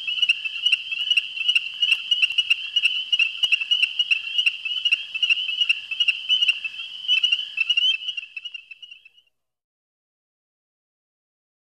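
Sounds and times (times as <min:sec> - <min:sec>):
Pseudacris ornata ornate chorus frog chorus peeping: 0:00.0 - 0:09.3.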